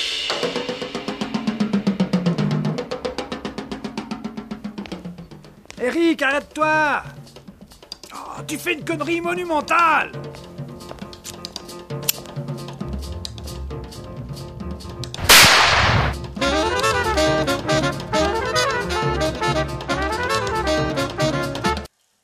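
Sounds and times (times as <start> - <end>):
music with steady beat: 0.0 - 21.9
speech: 5.8 - 7.2, 8.4 - 10.3
gunshot: 15.2 - 16.3.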